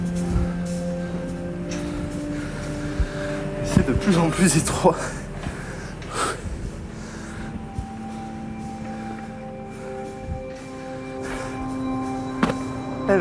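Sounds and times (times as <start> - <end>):
heavy labored breathing from someone out of breath from exertion: 0.0 - 4.0, 4.8 - 13.0
speech: 3.9 - 5.2.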